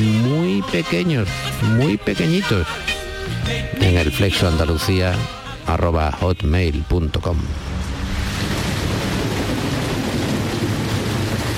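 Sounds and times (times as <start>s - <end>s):
speech: 0.7s - 7.7s
deep rumbling undertone: 7.2s - 11.5s
heavy rain: 7.4s - 11.5s.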